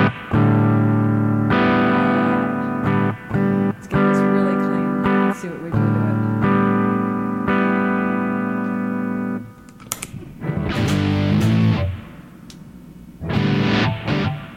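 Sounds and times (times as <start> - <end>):
electric guitar chords through a handmade boutique effects pedal into a clean amp: 0.0 - 14.5.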